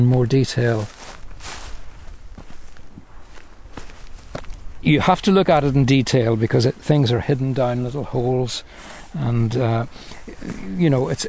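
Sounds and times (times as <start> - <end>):
speech: 0.0 - 1.0, 4.8 - 11.2
footsteps on limestone blocks in an open grassland landscape: 0.0 - 7.5
steady hiss: 0.0 - 11.2.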